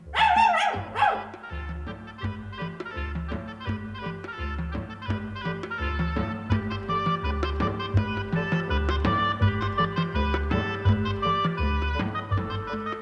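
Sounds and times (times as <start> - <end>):
steady rhythmic music with a deep pulsing bass line: 0.0 - 12.9
red dog barking: 0.1 - 1.4.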